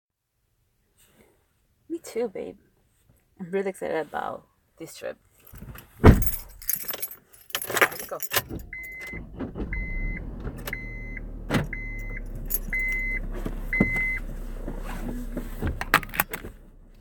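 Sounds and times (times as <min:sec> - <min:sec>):
speech: 0:01.9 - 0:02.7, 0:03.4 - 0:05.8, 0:08.1 - 0:09.5
keys jangling and clicking inside a car: 0:05.4 - 0:09.2, 0:11.6 - 0:13.3
sharp clunks: 0:05.6 - 0:06.8, 0:08.3 - 0:16.9
car chime beeping inside a car: 0:08.3 - 0:15.0
low car engine rumble: 0:08.4 - 0:16.9.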